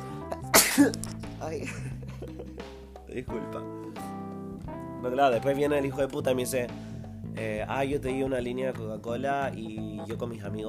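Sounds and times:
person sneezing: 0:00.4 - 0:01.1
speech: 0:00.8 - 0:04.1, 0:05.0 - 0:10.6
laughter: 0:01.6 - 0:02.7.

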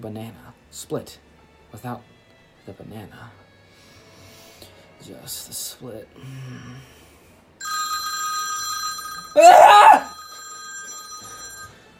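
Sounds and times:
speech: 0:00.0 - 0:03.4, 0:05.0 - 0:07.0, 0:09.3 - 0:09.9
telephone bell ringing: 0:07.6 - 0:11.9.

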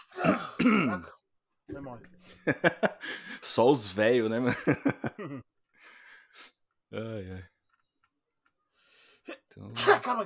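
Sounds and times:
loud voiced sneeze: 0:00.0 - 0:01.1, 0:09.8 - 0:10.2
speech: 0:00.2 - 0:05.6, 0:06.3 - 0:07.5, 0:09.3 - 0:10.2
laughter: 0:02.2 - 0:03.4, 0:04.4 - 0:05.4.

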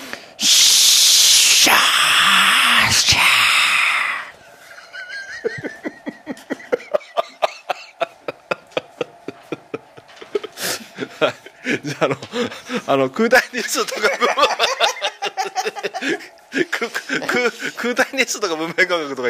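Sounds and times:
voice imitating snake hissing: 0:00.4 - 0:04.4
laughter: 0:04.6 - 0:17.9
speech: 0:11.9 - 0:14.9, 0:16.0 - 0:19.2.

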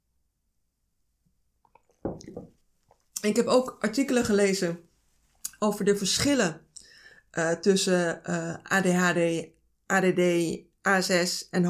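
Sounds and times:
gulp of water being swallowed: 0:01.8 - 0:02.5
speech: 0:02.1 - 0:02.6, 0:03.2 - 0:04.9, 0:05.6 - 0:06.6, 0:07.3 - 0:11.6.

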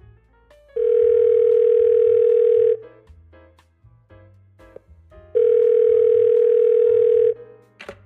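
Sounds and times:
telephone ringback tone of a call to a land broker in Dong Anh Hanoi: 0:00.8 - 0:02.8, 0:05.4 - 0:07.4.

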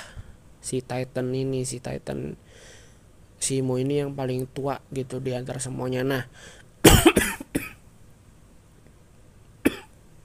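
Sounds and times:
speech: 0:00.7 - 0:02.8, 0:03.4 - 0:07.3
person coughing: 0:06.8 - 0:07.8, 0:09.6 - 0:09.9.

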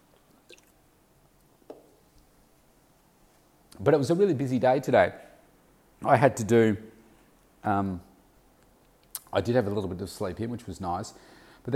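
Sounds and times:
person sipping water: 0:00.1 - 0:00.8
speech: 0:03.8 - 0:05.2, 0:06.0 - 0:06.9, 0:07.6 - 0:08.1, 0:09.3 - 0:11.7.

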